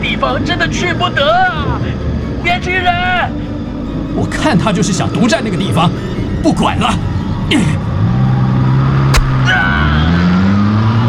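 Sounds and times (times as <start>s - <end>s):
car engine revving as the vehicle accelerates: 0.0s - 11.0s
speech: 0.2s - 3.5s, 4.1s - 7.9s
sharp thump: 9.1s - 9.5s.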